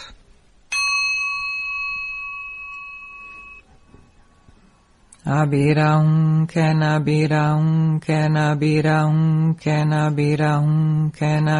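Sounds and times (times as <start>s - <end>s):
meditation bell being struck: 0.7s - 4.9s
speech: 5.2s - 11.5s.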